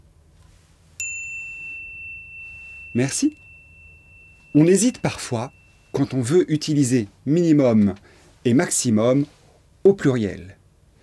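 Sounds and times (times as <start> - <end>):
bright notification bell ding: 1.0 - 6.3
speech: 3.0 - 3.4, 4.5 - 10.6.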